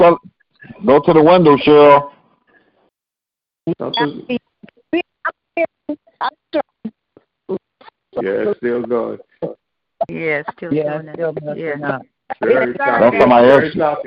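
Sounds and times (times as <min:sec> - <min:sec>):
speech: 0:00.0 - 0:02.1, 0:03.7 - 0:07.6, 0:08.2 - 0:14.0
voice over a bad phone line: 0:12.3 - 0:13.8.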